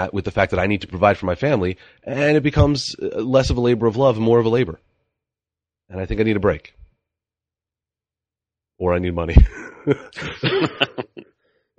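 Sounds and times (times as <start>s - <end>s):
speech: 0.0s - 4.9s, 5.9s - 6.8s, 8.8s - 11.7s
laughter: 9.4s - 11.7s
person coughing with chest congestion: 9.5s - 11.2s.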